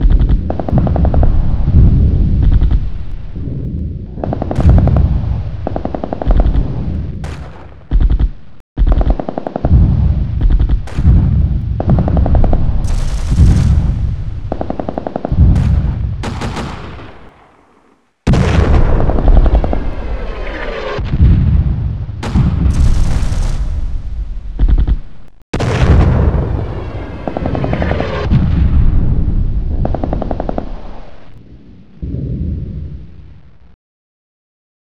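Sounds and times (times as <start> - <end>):
distant firefight: 0.0 - 31.4.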